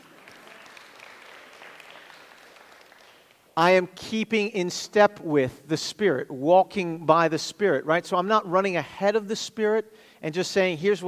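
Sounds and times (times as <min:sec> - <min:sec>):
audience applause: 0:00.0 - 0:03.6
speech: 0:03.6 - 0:11.0.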